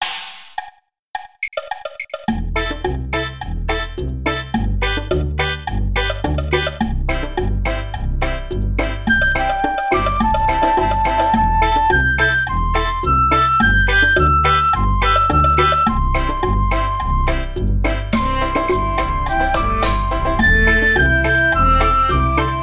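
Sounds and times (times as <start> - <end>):
Chinese Ya Yue seven-tone melody: 2.7 - 22.6.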